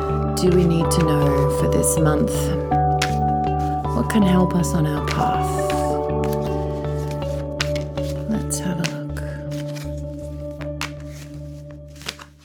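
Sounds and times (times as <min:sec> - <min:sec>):
rhythmic music: 0:00.0 - 0:12.4
speech: 0:00.4 - 0:02.8, 0:04.0 - 0:05.6
tarot card drawn from a deck with the left hand: 0:03.0 - 0:04.0, 0:05.0 - 0:12.4.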